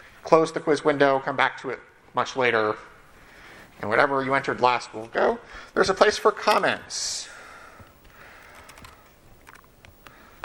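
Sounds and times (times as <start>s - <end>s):
faint hiss: 0.0s - 10.4s
speech: 0.3s - 2.9s, 3.8s - 7.3s
typing on a computer keyboard: 8.0s - 10.4s.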